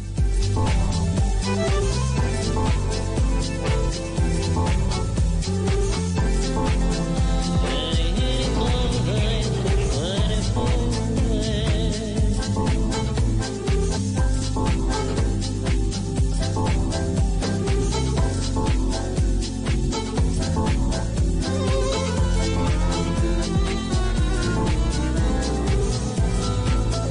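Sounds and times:
deep bass line: 0.0 - 27.0
full-band song on the radio: 0.0 - 27.0.

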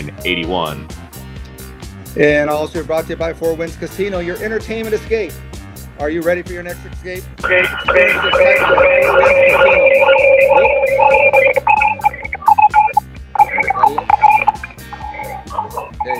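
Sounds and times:
speech: 0.1 - 1.0, 2.1 - 11.6
electronic signal interference buzzing on a live broadcast: 7.4 - 16.1.

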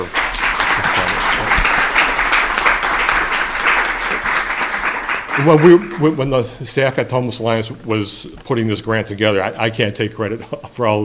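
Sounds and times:
audience applauding at a grant celebration event: 0.0 - 6.5
speech: 5.4 - 11.0.

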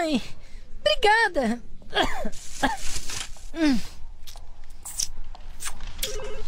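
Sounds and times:
speech: 0.1 - 0.4, 1.0 - 2.8
wet noisy sucking and slurping on a hard candy: 4.3 - 5.8.

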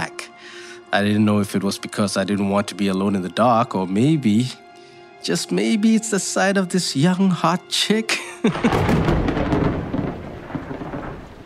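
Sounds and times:
speech: 0.9 - 4.6, 5.2 - 9.4
heavy rain: 8.5 - 11.4
low rolling rumble of thunder: 8.5 - 11.4.

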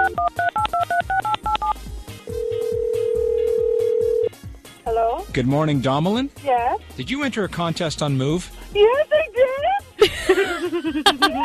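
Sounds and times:
touch-tone beeps of a phone number being dialed: 0.0 - 4.3
speech: 5.3 - 9.2, 10.0 - 11.4
laughter: 9.1 - 11.4.

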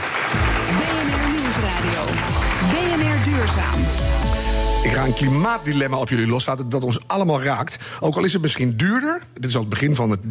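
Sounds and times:
crowd applauding politicians: 0.0 - 5.0
speech: 2.6 - 10.2.

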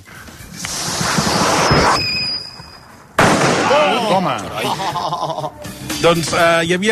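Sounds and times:
silbabum firecracker hissing and whistling: 0.4 - 3.8
silbabum firecracker bang: 0.7 - 4.0
laughter: 4.0 - 5.7
speech: 4.2 - 6.9.

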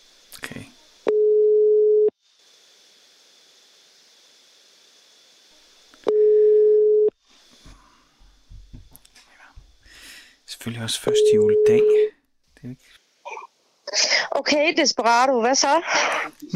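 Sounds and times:
telephone ringback tones on the caller's end: 1.1 - 2.1, 6.1 - 7.1, 11.1 - 12.1
speech: 10.7 - 13.0, 14.0 - 16.5.

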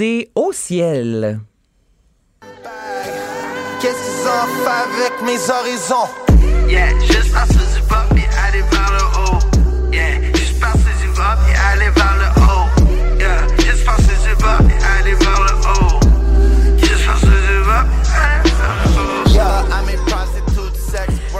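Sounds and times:
speech: 0.0 - 1.5, 3.8 - 7.6
loud bass-heavy music with booming low end, punchy kicks and layered synths: 6.3 - 21.3.

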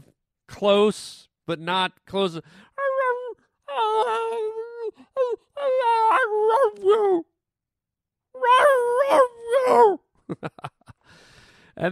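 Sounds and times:
speech: 0.6 - 2.7, 6.5 - 7.3, 8.4 - 10.8
dog howling and moaning: 2.8 - 7.3, 8.4 - 10.0.

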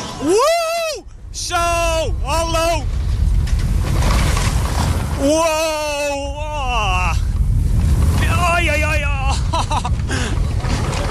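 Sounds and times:
rushing wind from a launching roller coaster: 0.0 - 11.1
speech: 0.2 - 0.4, 5.2 - 5.9
laughter: 9.2 - 10.4.

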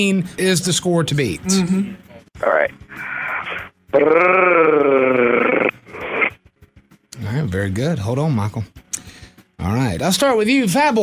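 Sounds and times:
speech: 0.0 - 2.8, 3.9 - 4.6, 7.6 - 8.8, 9.6 - 11.0
man imitating a cat purr: 4.0 - 5.7.

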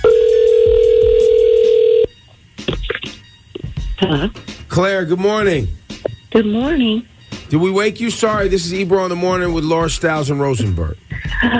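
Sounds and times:
telephone dial tone as a phone call is placed: 0.0 - 2.1
speech: 4.0 - 11.5.

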